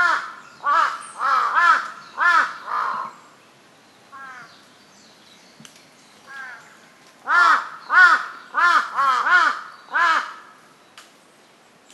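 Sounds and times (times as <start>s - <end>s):
Large-billed crow cawing with hoarse arched caws: 0.0s - 3.1s, 4.2s - 4.5s, 6.3s - 6.6s, 7.2s - 10.6s
Large-billed crow soft calls: 0.0s - 3.2s, 4.1s - 4.6s, 6.3s - 10.7s.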